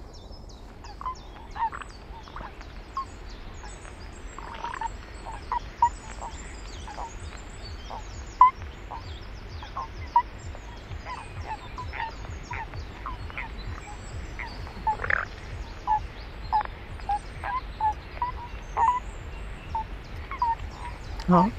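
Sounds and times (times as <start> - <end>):
outdoor hiss: 0.0 - 21.5
toad calling: 0.0 - 21.5.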